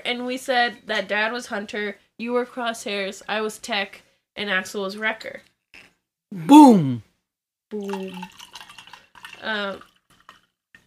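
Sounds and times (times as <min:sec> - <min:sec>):
speech: 0:00.1 - 0:05.5, 0:06.3 - 0:07.1, 0:07.7 - 0:08.4, 0:09.4 - 0:09.9
wine pouring into a glass: 0:07.8 - 0:10.5.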